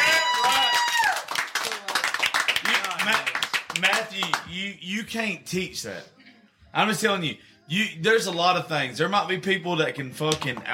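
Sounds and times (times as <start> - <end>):
scattered cheers: 0.0 - 1.4
round of applause with fast dense clapping: 0.0 - 4.5
speech: 3.1 - 10.7.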